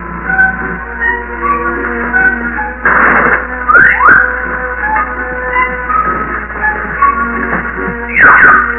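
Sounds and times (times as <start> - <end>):
music: 0.0 - 8.7.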